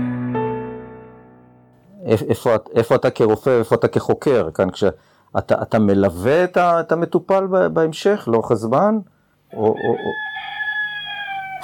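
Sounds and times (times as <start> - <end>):
speech: 2.1 - 10.5
rooster crowing: 9.5 - 11.6.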